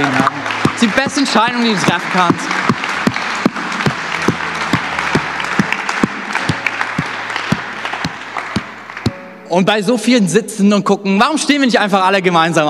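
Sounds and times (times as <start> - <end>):
speech: 0.0 - 2.8, 9.5 - 12.6
church congregation applauding in a large room: 0.0 - 9.8.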